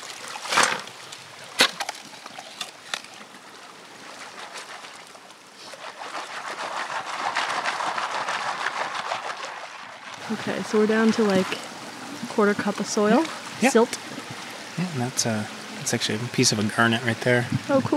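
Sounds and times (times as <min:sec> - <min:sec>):
shovel digging in wet riverbed gravel: 0:00.0 - 0:01.0, 0:05.6 - 0:09.7
flowing splashing river water: 0:00.0 - 0:17.9
speech: 0:10.3 - 0:11.7, 0:12.4 - 0:14.0, 0:14.8 - 0:17.9.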